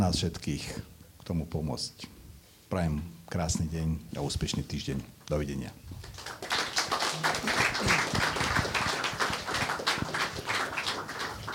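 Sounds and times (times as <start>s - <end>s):
speech: 0.0s - 6.4s
audience applause: 6.0s - 11.5s.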